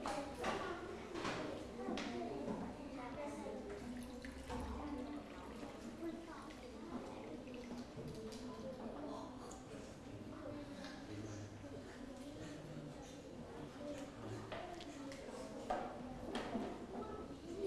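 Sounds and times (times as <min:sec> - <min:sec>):
faint indistinct voices murmuring: 0:00.0 - 0:17.6
water poured from a jug into a glass by a child: 0:03.7 - 0:08.4.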